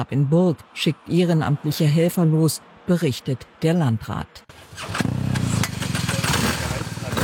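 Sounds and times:
speech: 0.0s - 5.2s
motorcycle engine running with a throbbing low rumble: 4.5s - 7.2s.

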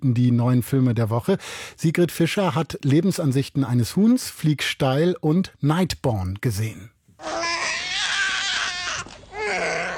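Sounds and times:
speech: 0.0s - 7.6s
newborn baby crying and screaming: 7.2s - 9.9s.

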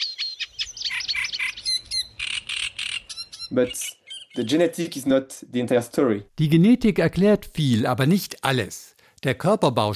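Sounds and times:
reed warbler singing: 0.0s - 5.1s
speech: 3.5s - 9.9s.

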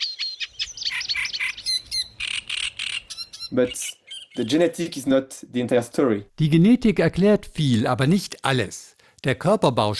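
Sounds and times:
reed warbler song: 0.0s - 4.9s
speech: 3.5s - 9.9s.

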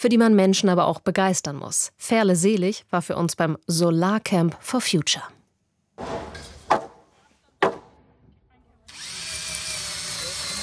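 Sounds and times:
speech: 0.0s - 5.4s
sharp knocks: 6.0s - 7.0s, 7.6s - 8.0s
power drill driving screws into wooden beams: 8.9s - 10.6s.

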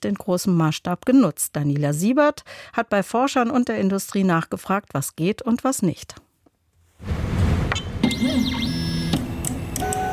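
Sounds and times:
speech: 0.0s - 6.2s, 7.0s - 7.4s
constant mechanical hum of a 3D printer: 7.0s - 10.1s
3D printer stepper motors whining: 8.0s - 10.1s.

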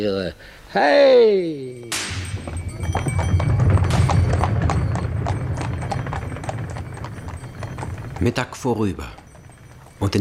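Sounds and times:
speech: 0.0s - 2.2s, 2.9s - 3.6s, 8.2s - 9.2s, 10.0s - 10.1s
horse hooves clip-clopping on a hard surface: 1.8s - 10.1s
low rumbling background: 2.2s - 10.1s.

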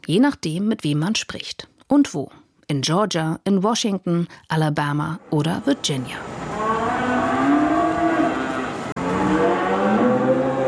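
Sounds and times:
speech: 0.0s - 6.4s
cattle mooing in a new open barn on a farm in Virginia: 6.5s - 10.6s.

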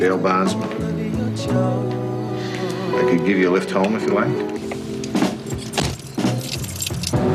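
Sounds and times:
speech: 0.0s - 2.0s, 3.0s - 4.6s
keys jangling: 5.3s - 7.2s.

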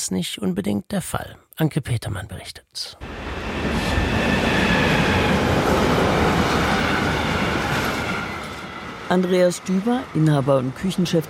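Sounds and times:
speech: 0.0s - 4.0s, 9.1s - 11.2s
train passing on a railway line in the Rhine valley: 3.0s - 11.2s.

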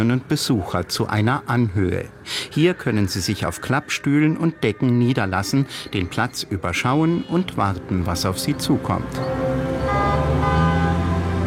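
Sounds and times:
speech: 0.0s - 9.5s
tuned car engines rumbling while pulling up in a line: 7.1s - 11.4s
loud steady horn-like droning tone from tuned cars: 8.4s - 11.4s.

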